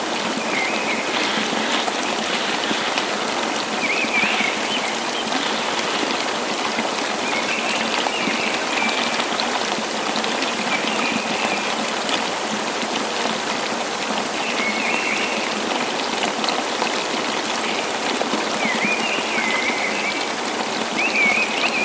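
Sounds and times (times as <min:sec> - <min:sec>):
rushing mountain stream and waterfall at the Glasbach: 0:00.0 - 0:21.8.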